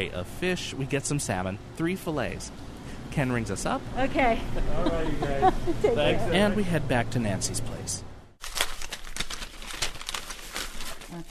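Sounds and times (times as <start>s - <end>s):
speech: 0.0s - 8.1s
laughter: 4.4s - 6.7s
paper crinkling and rustling as salmon fillets are unwrapped in a home kitchen: 8.4s - 11.2s.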